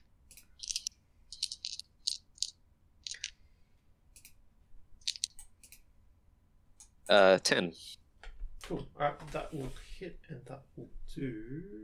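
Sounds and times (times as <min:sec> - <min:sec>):
dice clattering and tumbling across a hard surface: 0:00.6 - 0:03.4, 0:05.0 - 0:05.4
speech: 0:07.1 - 0:08.0, 0:08.7 - 0:11.8.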